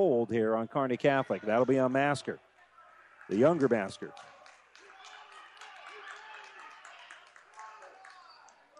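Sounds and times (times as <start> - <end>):
speech: 0.0 - 2.5, 3.3 - 4.4
murmur of many voices: 0.0 - 8.7
crowd clapping sarcastically at a basketball game: 3.0 - 8.7.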